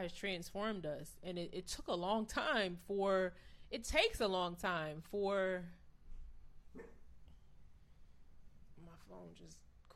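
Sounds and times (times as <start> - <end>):
speech: 0.0 - 5.8, 6.8 - 7.0, 9.0 - 9.7
faint short dog bark: 6.7 - 7.1.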